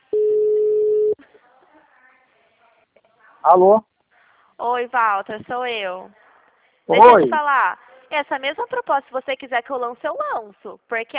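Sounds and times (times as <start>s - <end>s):
steady telephone tone while placing a call: 0.0s - 1.2s
speech: 3.4s - 3.9s, 4.6s - 6.2s, 6.9s - 11.1s.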